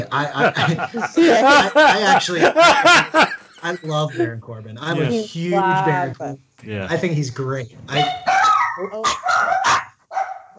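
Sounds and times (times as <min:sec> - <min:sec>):
laughter: 0:00.0 - 0:07.6
speech: 0:00.0 - 0:09.8
dog barking: 0:07.9 - 0:10.5.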